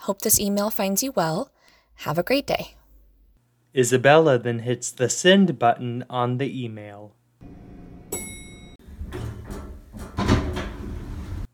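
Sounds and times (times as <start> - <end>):
speech: 0.0 - 2.8, 3.7 - 7.7
elevator doors sliding open onto a fifth-floor office: 7.4 - 11.5
bright electronic elevator chime: 7.5 - 8.8.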